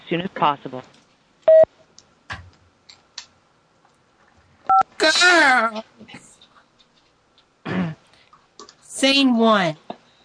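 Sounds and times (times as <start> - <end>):
speech: 0.1 - 1.0, 5.1 - 6.3, 9.0 - 9.9
short loud electronic beep: 1.5 - 1.7.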